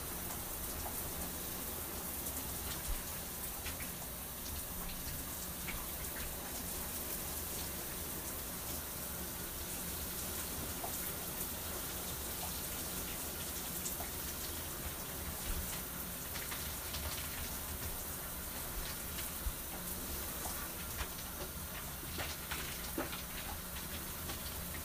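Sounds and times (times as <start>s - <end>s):
shower running: 0.0s - 24.8s
water drips and splatters: 0.0s - 24.8s.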